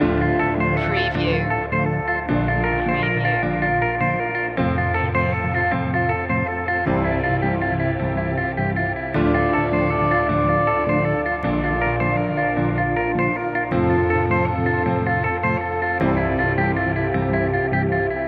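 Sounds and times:
guitar arpeggio loop: 0:00.0 - 0:18.2.

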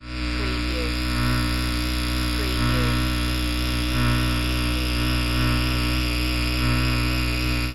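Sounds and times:
high voltage electricity: 0:00.0 - 0:07.7.

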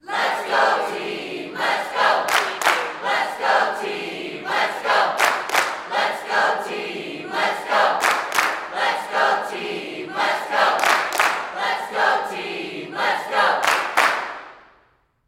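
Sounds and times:
sports crowd cheerleaders chanting: 0:00.0 - 0:14.7
people clapping: 0:01.6 - 0:06.8, 0:07.4 - 0:09.7, 0:10.3 - 0:14.8.

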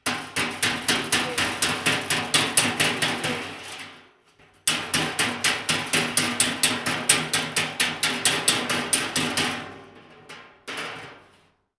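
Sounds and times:
fast hammering on car bodywork: 0:00.0 - 0:03.3, 0:04.7 - 0:09.7.

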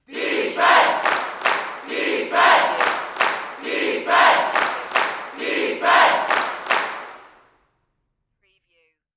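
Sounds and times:
sports crowd chanting defense: 0:00.0 - 0:07.2.

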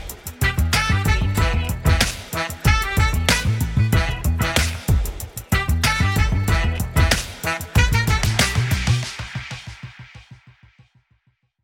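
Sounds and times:
saxophone stinger: 0:00.4 - 0:09.2.

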